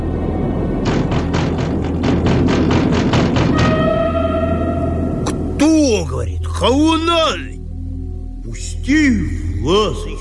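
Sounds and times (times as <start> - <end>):
low constant rumble: 0.0 - 10.1
knocking on a window: 0.8 - 3.8
speech: 6.0 - 7.5, 8.6 - 10.1.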